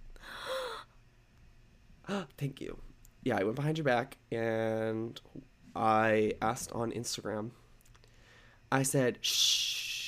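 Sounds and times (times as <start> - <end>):
breathy gasp with a faint voiced squeak: 0.2 - 0.9
speech: 2.1 - 7.6, 8.7 - 9.9.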